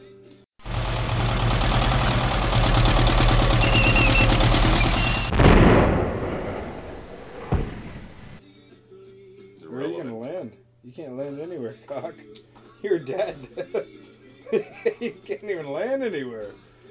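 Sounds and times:
heavy blast in a video game: 0.6 - 8.4
video game tanks rolling with engine rumble: 0.6 - 8.4
video game tanks firing rapid rattling bursts: 4.4 - 8.4
sharp single crack in a video game: 5.3 - 8.4
laughter: 12.8 - 15.8
speech: 13.0 - 16.7.

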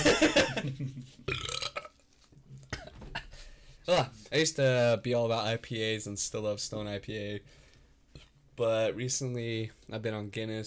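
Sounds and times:
loud gravelly burp: 1.3 - 2.0
speech: 3.9 - 7.6, 8.6 - 10.6.

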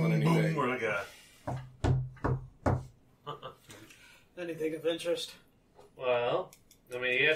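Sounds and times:
speech: 0.7 - 1.6, 4.4 - 7.3
dull hollow knocks on wood: 1.5 - 2.9.

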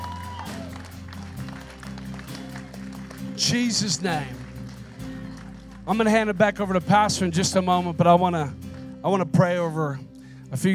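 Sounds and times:
audience clapping and cheering: 0.0 - 7.0
speech: 3.4 - 4.4, 5.9 - 10.7.

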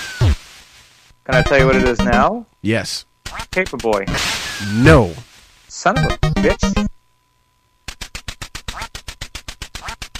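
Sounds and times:
speech: 1.3 - 7.0
electronic duck quacks from a retro video game: 3.3 - 3.6, 6.0 - 6.9, 8.7 - 9.0, 9.7 - 10.1.

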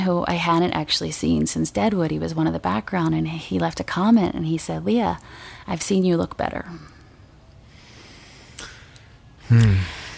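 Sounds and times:
speech: 0.0 - 7.0, 9.5 - 10.0
faint breaths: 5.2 - 5.7, 6.7 - 10.1.

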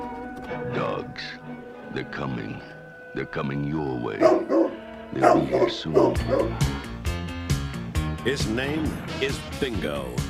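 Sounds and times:
speech: 0.7 - 6.9, 8.2 - 10.2
dog barking in short sharp yips: 4.2 - 6.7.

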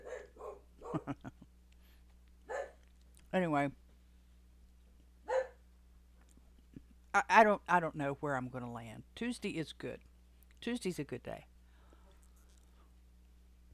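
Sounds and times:
dog barking: 0.0 - 1.1, 2.5 - 2.8, 5.3 - 5.6
speech: 0.9 - 1.4, 3.3 - 3.8, 7.2 - 11.5.

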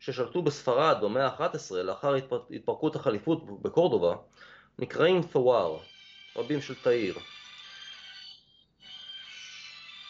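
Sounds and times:
speech: 0.0 - 7.4
telephone ringtone with high-pitched electronic warble: 5.8 - 10.0.

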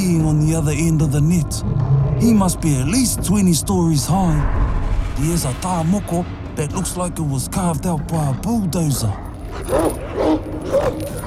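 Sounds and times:
low rumble: 0.0 - 11.2
speech: 0.3 - 10.0
large dog barking: 9.5 - 11.2.

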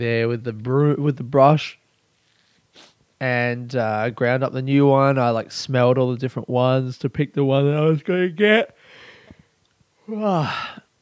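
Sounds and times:
speech: 0.0 - 1.8, 2.8 - 8.8, 10.1 - 10.8
breathing: 8.8 - 9.6, 10.4 - 10.9
person yawning: 10.0 - 10.9.

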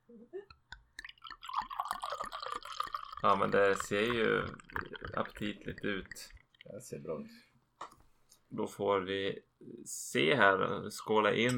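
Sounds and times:
speech: 0.1 - 0.6, 3.2 - 7.5, 8.5 - 11.5
drips landing in a glass: 0.5 - 6.8
liquid pouring into a glass with a bubbly gurgling splash: 0.8 - 6.9.

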